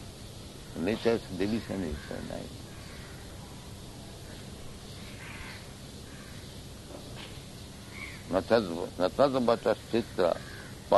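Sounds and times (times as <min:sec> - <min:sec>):
steady hiss of outdoor noise: 0:00.0 - 0:10.9
speech: 0:00.8 - 0:02.7, 0:08.3 - 0:10.9
crow cawing: 0:01.8 - 0:03.3, 0:05.1 - 0:06.5, 0:07.8 - 0:08.3, 0:10.1 - 0:10.9.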